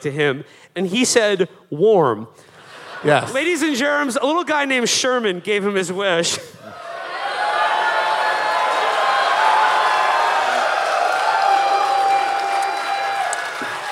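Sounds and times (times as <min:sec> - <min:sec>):
speech: 0:00.0 - 0:06.8
large live crowd cheering and whooping: 0:06.7 - 0:13.9.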